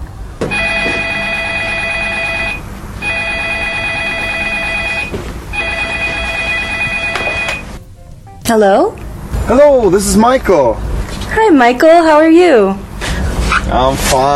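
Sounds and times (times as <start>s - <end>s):
telephone ringing with electronic trill: 0.5s - 7.8s
speech: 8.5s - 12.8s, 13.7s - 14.3s.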